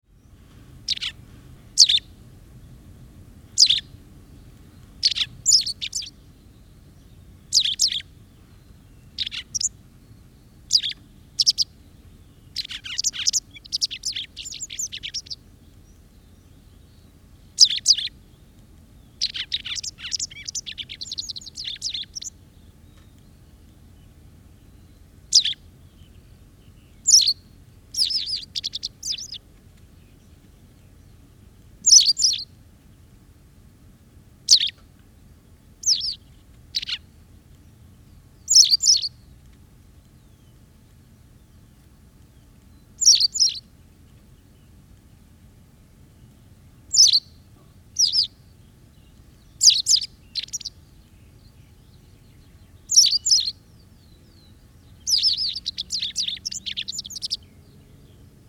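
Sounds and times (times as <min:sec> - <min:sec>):
white wagtail calling: 0:00.8 - 0:02.1, 0:03.5 - 0:04.0, 0:04.7 - 0:18.3, 0:19.1 - 0:23.5, 0:24.6 - 0:31.0, 0:31.8 - 0:32.5, 0:34.5 - 0:34.8, 0:35.8 - 0:37.1, 0:38.4 - 0:39.2, 0:42.4 - 0:43.7, 0:46.8 - 0:57.6.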